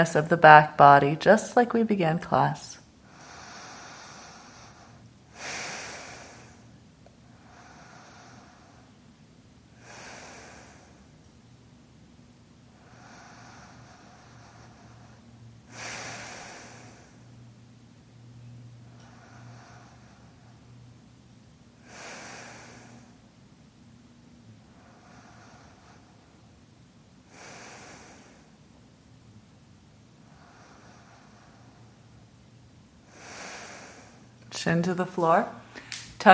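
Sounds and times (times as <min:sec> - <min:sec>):
speech: 0:00.0 - 0:02.8, 0:34.7 - 0:35.6
low steady hum: 0:00.0 - 0:36.3
slow deep breathing during a yoga class: 0:03.0 - 0:09.1, 0:09.7 - 0:11.2, 0:12.7 - 0:17.5, 0:18.2 - 0:21.1, 0:21.8 - 0:23.4, 0:24.4 - 0:26.6, 0:27.2 - 0:28.7, 0:30.2 - 0:32.4, 0:33.0 - 0:34.6.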